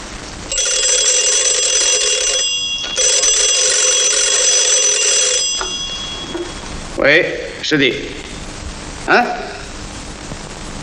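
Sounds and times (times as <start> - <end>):
old-fashioned telephone ringing in buzzing bursts: 0.5 - 6.9
speech: 7.0 - 8.3, 9.1 - 9.4.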